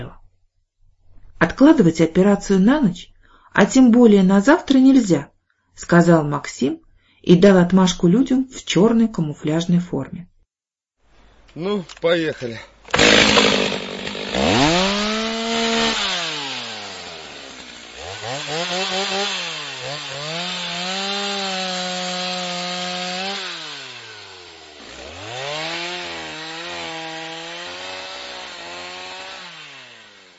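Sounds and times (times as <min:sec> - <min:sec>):
speech: 0:01.4 - 0:10.3, 0:11.6 - 0:13.8
angle grinder disc cutting metal: 0:12.9 - 0:30.3.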